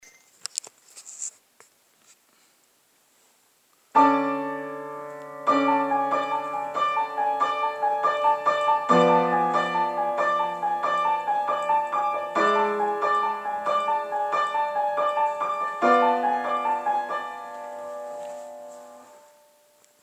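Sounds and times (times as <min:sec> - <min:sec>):
piano lick: 0:04.0 - 0:19.8.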